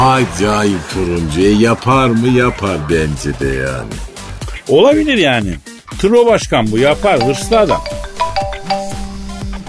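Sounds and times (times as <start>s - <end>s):
speech: 0.0s - 4.1s, 4.7s - 8.0s
telephone electronic ringtone on another line: 6.9s - 9.5s.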